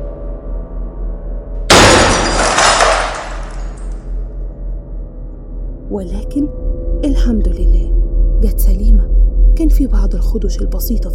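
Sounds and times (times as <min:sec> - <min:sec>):
large glass pane of a door shattering: 0:01.7 - 0:04.0
speech: 0:05.9 - 0:11.1.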